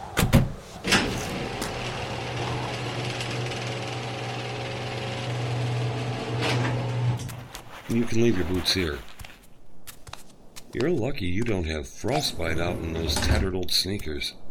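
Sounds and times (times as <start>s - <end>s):
automatic garage door mechanical clunks: 0.2s - 7.4s
speech: 7.9s - 9.1s, 10.7s - 14.4s.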